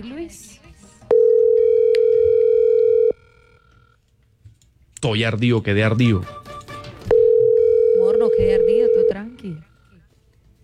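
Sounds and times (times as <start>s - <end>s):
speech: 0.0s - 0.7s, 5.0s - 6.4s, 8.4s - 9.7s
telephone dial tone while calling a number: 1.1s - 3.2s, 7.1s - 9.2s.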